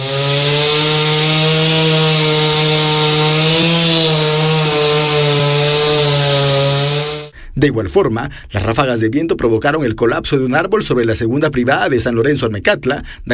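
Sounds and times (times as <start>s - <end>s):
chainsaw cutting a fallen tree: 0.0s - 7.3s
speech: 7.6s - 13.3s.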